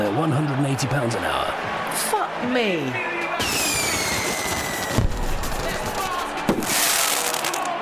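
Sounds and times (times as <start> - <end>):
speech: 0.0 - 3.5
whistling streaks of fireworks: 3.4 - 5.6, 6.6 - 7.6
continuous crackling, sizzling rush of fireworks: 3.4 - 7.7.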